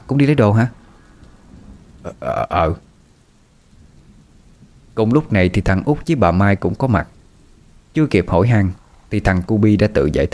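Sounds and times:
deep continuous thunder rumble: 0.0 - 10.3
steady dense rainfall: 0.0 - 10.3
speech: 0.1 - 0.8, 2.0 - 2.9, 5.0 - 7.2, 7.9 - 10.3.

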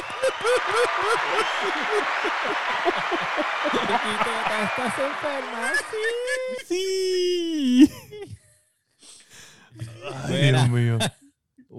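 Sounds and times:
crowd clapping: 0.0 - 7.2
people cheering and whooping: 0.0 - 7.6
laughter: 0.0 - 8.4, 9.8 - 11.2
speech: 0.2 - 8.0, 9.8 - 11.7.

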